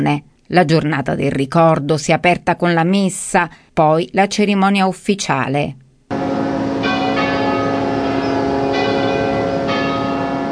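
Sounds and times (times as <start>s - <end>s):
speech: 0.0s - 5.8s
church bells ringing across a diocese: 6.1s - 10.5s.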